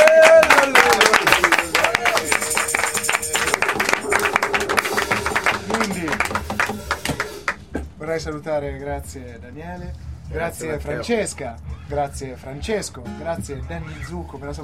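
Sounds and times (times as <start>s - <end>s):
voices calling out and cheering: 0.0s - 7.6s
audience applause: 0.0s - 7.8s
speech: 8.2s - 14.6s.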